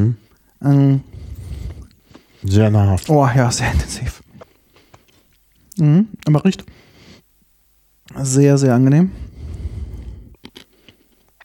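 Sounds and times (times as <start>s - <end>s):
speech: 0.0s - 1.1s, 2.4s - 4.2s, 5.8s - 6.8s, 8.1s - 9.3s
chewing coarse whole-grain bread with a light flour coating: 4.2s - 5.7s, 9.9s - 11.4s.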